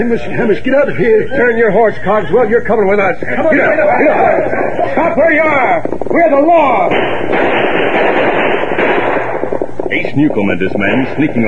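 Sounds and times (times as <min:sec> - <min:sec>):
laughter: 0:00.0 - 0:05.7
speech: 0:00.0 - 0:08.3, 0:09.9 - 0:11.4
gunfire from a sheriff's posse shooting over outlaws' heads during a ranch raid: 0:03.4 - 0:11.4.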